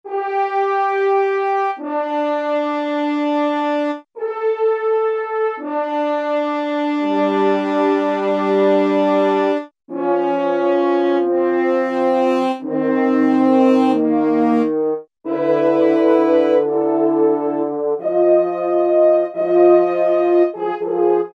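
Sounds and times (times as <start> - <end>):
French horns playing ambient music: 0.1 - 21.3.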